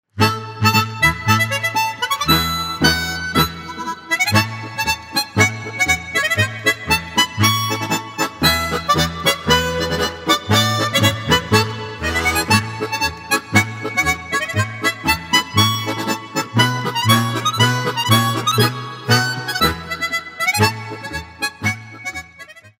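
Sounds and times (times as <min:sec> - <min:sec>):
march music: 0:00.3 - 0:22.0.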